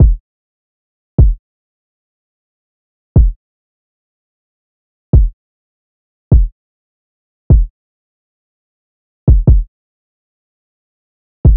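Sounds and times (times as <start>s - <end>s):
drum loop with kick drum: 0.0s - 0.2s, 1.2s - 1.4s, 3.2s - 3.4s, 6.3s - 6.5s, 9.3s - 9.7s.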